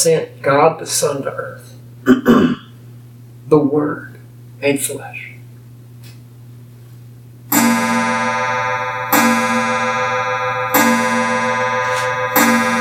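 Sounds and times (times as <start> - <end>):
speech: 0.0 - 2.6, 3.5 - 5.3
low steady hum: 0.0 - 12.8
clock striking chimes: 7.5 - 12.8.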